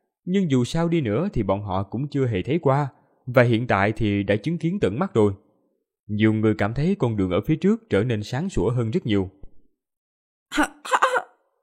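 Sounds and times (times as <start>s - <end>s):
speech: 0.2s - 5.4s, 6.1s - 9.4s, 10.5s - 10.8s
woman coughing while her throat is gripped by a hand: 10.5s - 11.4s.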